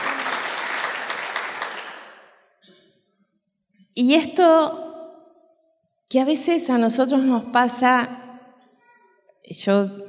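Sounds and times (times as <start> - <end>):
congregation clapping: 0.0 - 2.4
speech: 4.0 - 4.8, 6.1 - 8.2, 9.5 - 10.0.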